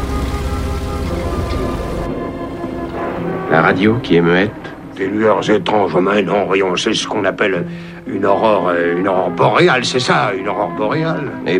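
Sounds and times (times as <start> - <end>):
heavy rain pouring down in a sudden thunderstorm: 0.0 - 6.0
speech: 3.5 - 11.5.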